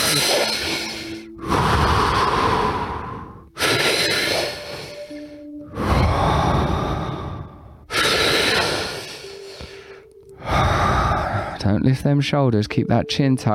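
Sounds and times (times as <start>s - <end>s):
deep full belly and chest breathing with long inhales and exhales: 0.0s - 11.8s
speech: 11.6s - 13.5s.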